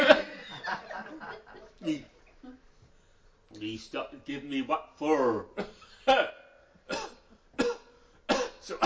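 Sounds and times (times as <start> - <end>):
speech: 1.8 - 2.1, 3.5 - 7.0, 8.6 - 8.8
harsh coughs: 5.6 - 8.8.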